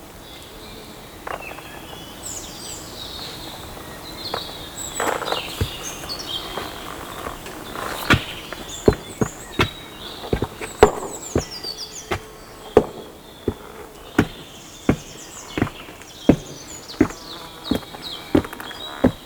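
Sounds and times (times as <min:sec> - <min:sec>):
birds chirping: 0:04.4 - 0:19.2
sharp taps or clicks: 0:08.0 - 0:19.2.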